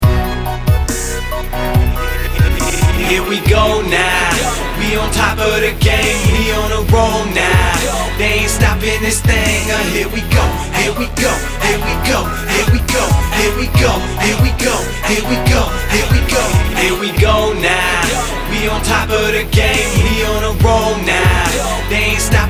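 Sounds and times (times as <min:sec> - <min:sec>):
stutter effect: 0:00.0 - 0:22.4.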